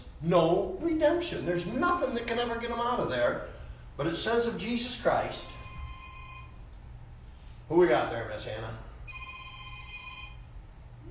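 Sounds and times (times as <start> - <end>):
low steady hum: 0.0 - 11.0
speech: 0.2 - 5.6, 7.7 - 8.9
telephone ringing: 5.4 - 6.6, 9.1 - 10.6.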